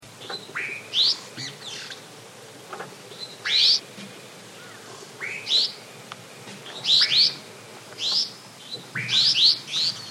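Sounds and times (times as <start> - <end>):
white-winged swallow calling: 0.2 - 2.0, 3.1 - 3.8, 4.6 - 5.8, 6.6 - 7.4, 8.0 - 10.0.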